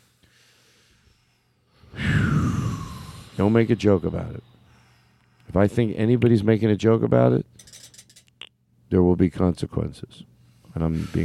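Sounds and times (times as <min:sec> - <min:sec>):
deep breath: 0:00.0 - 0:05.5
speech: 0:03.4 - 0:04.6, 0:05.5 - 0:07.8, 0:08.9 - 0:11.2.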